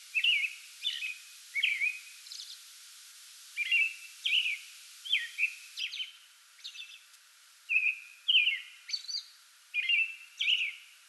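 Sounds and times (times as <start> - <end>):
soft background hiss: 0.0 - 11.0
American robin whistled pre-dawn song phrases: 0.1 - 2.4, 3.6 - 6.1, 7.7 - 9.2, 9.8 - 10.8.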